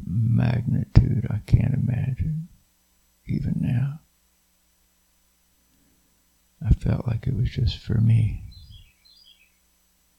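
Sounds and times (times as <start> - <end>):
speech: 0.1 - 2.5, 6.9 - 8.5
small bird chirping: 8.3 - 9.7.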